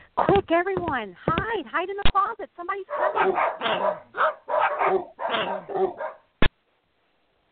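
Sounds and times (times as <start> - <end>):
speech: 0.3 - 6.1
dogs barking in rapid overlapping yaps and yips: 2.9 - 6.3.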